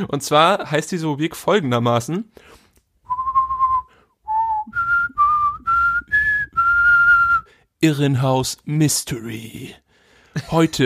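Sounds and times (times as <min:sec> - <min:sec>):
speech: 0:00.0 - 0:02.6, 0:07.8 - 0:09.8, 0:10.4 - 0:10.8
person whistling a short jingle-like tune: 0:03.1 - 0:07.6.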